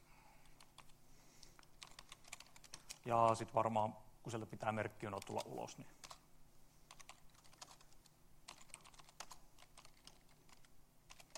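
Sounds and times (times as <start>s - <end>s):
typing on a computer keyboard into a command-line shell: 0.4s - 1.0s, 1.6s - 3.1s, 5.2s - 6.2s, 6.9s - 11.3s
speech: 3.0s - 6.0s.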